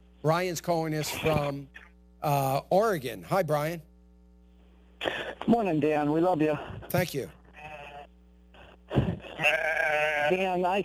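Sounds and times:
speech: 0:00.2 - 0:03.9, 0:05.0 - 0:07.4, 0:09.4 - 0:10.8
sheep bleating: 0:09.2 - 0:10.6.

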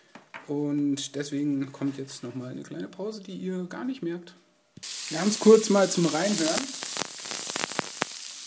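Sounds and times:
speech: 0:00.5 - 0:06.9
sliced bell peppers sizzling as they saute in a frying pan: 0:04.8 - 0:08.4.

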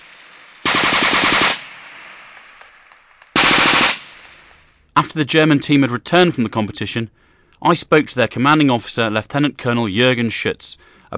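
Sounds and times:
mounted machine guns firing blank ammunition overhead during a military patrol exercise: 0:00.0 - 0:04.6
faint pops: 0:01.7 - 0:03.4
speech: 0:05.0 - 0:11.1.

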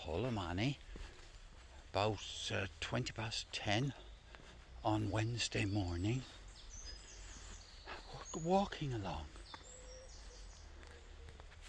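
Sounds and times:
speech: 0:00.0 - 0:01.1, 0:02.0 - 0:04.1, 0:04.8 - 0:06.4, 0:08.3 - 0:09.4
faint birdsong from a dove, a wren, a chaffinch and a blackbird in Cork, Ireland: 0:00.0 - 0:11.6.

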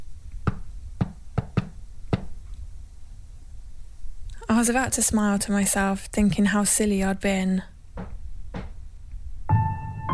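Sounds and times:
faint hiss: 0:00.0 - 0:10.0
sharp hollow knocks on a wooden floor: 0:00.5 - 0:02.3, 0:08.0 - 0:08.8
speech: 0:04.6 - 0:08.1.

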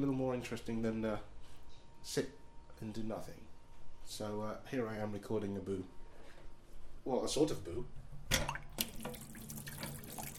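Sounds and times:
speech: 0:00.0 - 0:01.4, 0:02.0 - 0:06.0, 0:07.0 - 0:08.5
hot water running from a tap: 0:08.5 - 0:10.3.

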